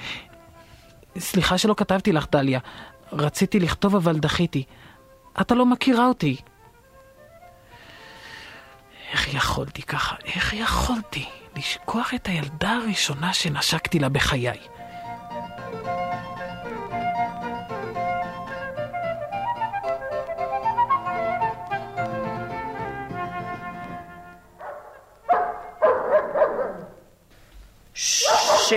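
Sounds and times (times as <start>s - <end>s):
sustained tonal music: 0.2s - 25.8s
speech: 1.2s - 6.5s, 9.2s - 14.8s
dog barking: 24.6s - 27.0s, 28.2s - 28.7s
hissy noise: 27.8s - 28.7s.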